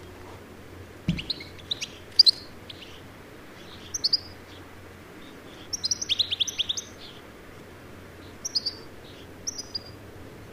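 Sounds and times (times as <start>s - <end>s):
European goldfinch Carduelis carduelis twittering calls: 1.1s - 3.0s, 3.6s - 4.6s, 5.2s - 7.2s, 8.2s - 10.0s.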